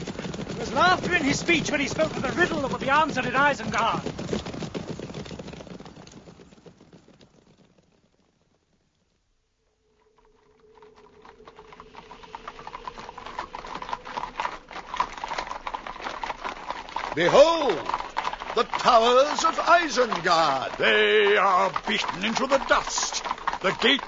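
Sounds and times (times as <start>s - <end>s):
hooves of weary horses clip-clopping: 0.0s - 24.0s
speech: 0.6s - 4.4s, 17.2s - 17.9s, 18.6s - 24.0s.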